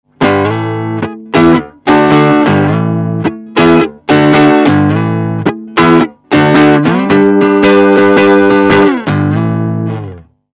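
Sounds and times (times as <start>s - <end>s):
crunchy electric guitar through a Fender Champion 600 amp: 0.1s - 10.5s.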